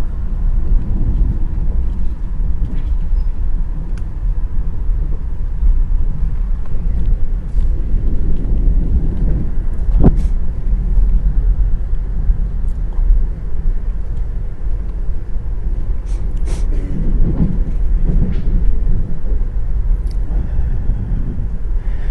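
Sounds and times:
diesel train rolling along rails heard from on board: 0.0 - 22.0.

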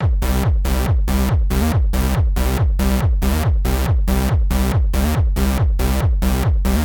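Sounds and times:
techno bass beat loop: 0.0 - 6.8.

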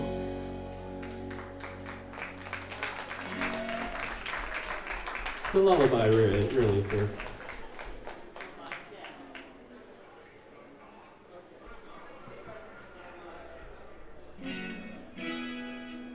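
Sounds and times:
audience clapping and cheering: 0.7 - 9.7
whoops and shouts: 3.2 - 4.2
speech: 5.5 - 7.3.

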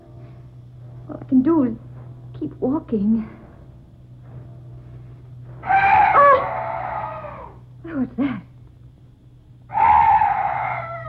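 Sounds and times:
quiet hum: 0.0 - 11.0
speech: 1.1 - 3.4, 7.8 - 8.5
strange night bird wailing cry: 5.6 - 7.6, 9.7 - 11.0.

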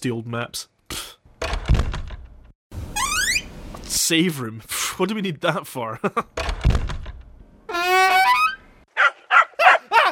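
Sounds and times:
speech: 0.0 - 0.8, 3.9 - 6.8
heavy door opening with a solid thunk: 1.4 - 2.2, 6.4 - 7.2
high rising creaky squeal of a swinging door: 2.9 - 3.5, 7.7 - 8.6.

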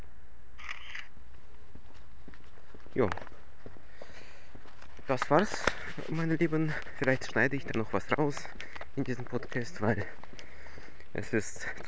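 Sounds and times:
camera shutter clicks taking a photo of the blue sky: 0.6 - 1.1
speech: 3.0 - 3.3, 5.1 - 10.2, 11.1 - 11.8.

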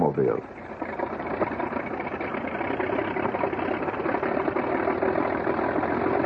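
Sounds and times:
Mercedes six-cylinder aircraft piston engine idling: 0.0 - 6.2.

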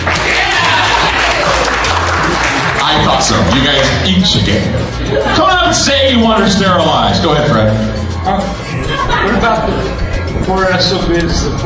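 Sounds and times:
studio audience at a talk show applauding: 0.0 - 4.6
laughter: 0.5 - 11.6
speech: 3.0 - 8.6, 9.2 - 11.6.

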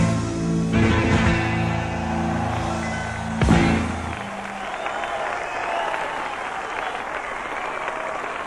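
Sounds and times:
musical passage: 0.1 - 4.8
live audience clapping and applauding: 1.4 - 8.4.

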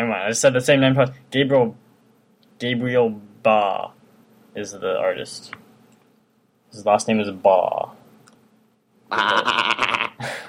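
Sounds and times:
speech: 0.0 - 1.8, 2.6 - 5.6, 6.7 - 8.0, 9.1 - 10.4
person imitating sheep bleat: 9.1 - 10.3.

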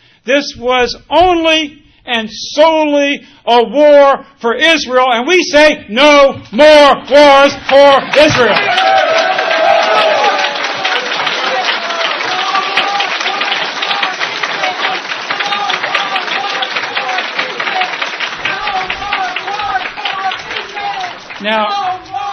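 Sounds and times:
speech: 0.2 - 8.8, 21.4 - 21.8
large crowd cheering and applauding: 7.3 - 22.3
scattered shouting voices in a crowd: 8.2 - 22.3.

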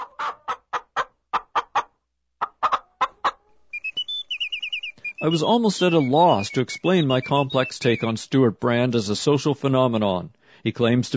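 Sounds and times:
chicken clucking in quick rhythmic bursts: 0.0 - 8.2
speech: 5.2 - 11.1.

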